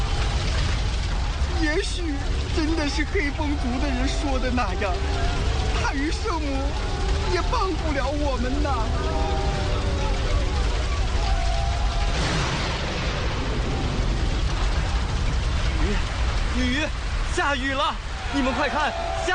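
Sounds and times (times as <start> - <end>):
steady heavy rain pouring down: 0.0 - 19.3
excited voices crying out: 1.4 - 12.4, 18.0 - 19.3
speech: 1.6 - 9.5, 15.9 - 19.3.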